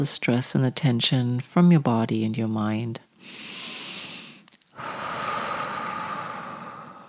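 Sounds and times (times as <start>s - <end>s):
speech: 0.0s - 3.5s
deep slow breathing in through the nose and out through the mouth: 3.2s - 7.0s.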